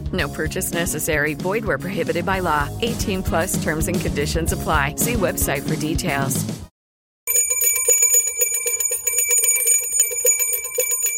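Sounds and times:
speech: 0.1 - 6.6
bright metallic bell ringing: 7.3 - 11.1.

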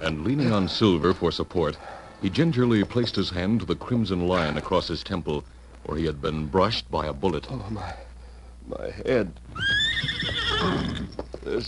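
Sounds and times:
speech: 0.0 - 8.1, 8.7 - 11.6
horse neighing: 9.5 - 11.2.

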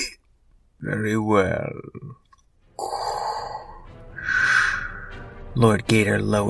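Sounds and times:
speech: 0.9 - 2.3, 5.6 - 6.4
person gasping for breath: 2.8 - 5.2.

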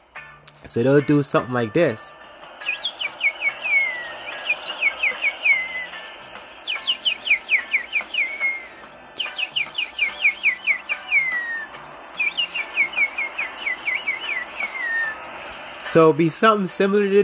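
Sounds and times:
speech: 0.6 - 2.2, 16.0 - 17.2
person whistling an imitation of tropical birdsong: 1.9 - 16.0.

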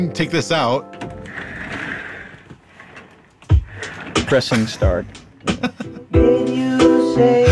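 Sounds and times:
speech: 0.0 - 1.1, 4.3 - 7.5
chair wheels rolling on a hard floor: 0.8 - 5.5
heavy thump: 3.5 - 5.6
laughter: 4.3 - 6.1.

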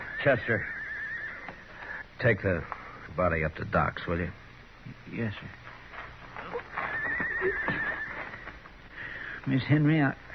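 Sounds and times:
horse whinnying: 0.0 - 2.0, 6.4 - 8.6
speech: 0.2 - 0.8, 2.2 - 5.6, 7.4 - 7.9, 9.4 - 10.2.

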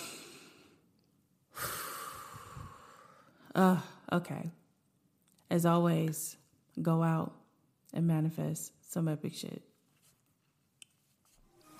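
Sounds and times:
deep breath drawn in during a guided breathing moment: 0.0 - 0.8, 1.5 - 3.5
speech: 3.6 - 4.6, 5.5 - 9.7.

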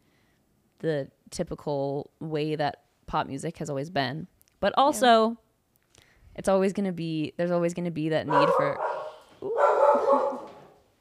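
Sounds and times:
speech: 0.8 - 5.4, 6.4 - 10.4
drawn-out howling dog bark: 8.3 - 10.8.

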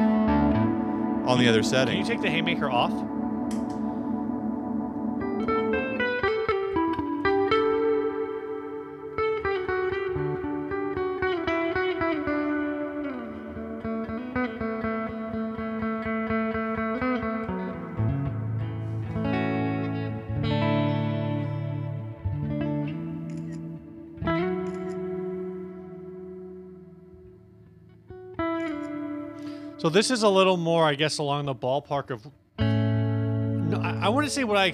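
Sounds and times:
electric guitar playing slow chords through a lush ambient reverb: 0.0 - 34.7
speech: 1.3 - 3.6, 29.9 - 32.4, 34.1 - 34.7.

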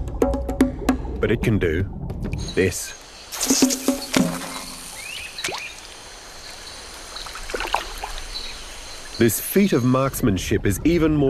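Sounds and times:
water dripping: 0.2 - 9.4
speech: 1.2 - 3.8, 9.2 - 11.2
archerfish firing its water jet: 2.2 - 9.2.

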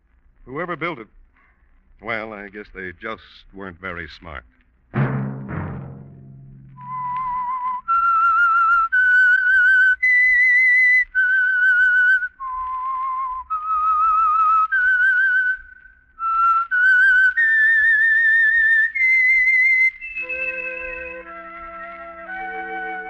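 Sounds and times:
speech: 0.4 - 1.2, 2.0 - 4.6
whistled theme tune: 6.8 - 23.0.

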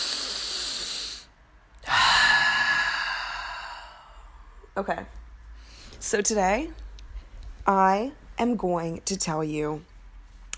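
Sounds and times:
deep breath: 0.0 - 4.7
speech: 4.8 - 5.2, 6.0 - 6.8, 7.6 - 9.9.

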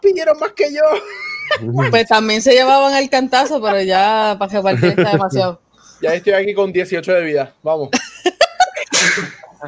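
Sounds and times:
speech: 0.1 - 8.0
laughter: 0.8 - 2.1, 3.3 - 5.6, 7.9 - 9.6
person sneezing: 8.9 - 9.6.

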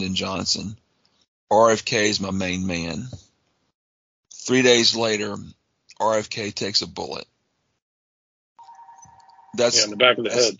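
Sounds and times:
speech: 0.0 - 0.8, 1.5 - 3.2, 4.4 - 7.3, 9.5 - 10.5
phone ringing with a steady electronic tone: 8.6 - 10.4.

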